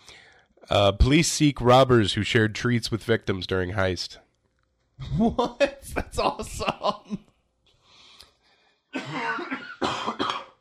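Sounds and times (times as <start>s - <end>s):
quiet breathy breathing: 0.0s - 0.6s, 7.7s - 8.9s
speech: 0.7s - 4.2s, 5.0s - 7.2s
harsh coughs: 8.9s - 10.5s.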